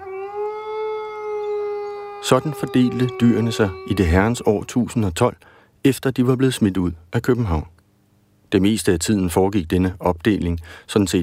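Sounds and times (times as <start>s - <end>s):
wolf howling: 0.0s - 5.2s
speech: 2.2s - 7.8s, 8.5s - 11.2s.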